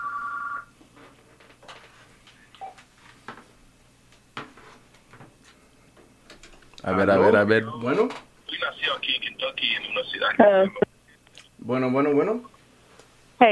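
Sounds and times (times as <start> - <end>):
electronic telephone ring for an incoming call: 0.0 - 0.7
speech: 6.8 - 10.8, 11.7 - 12.5.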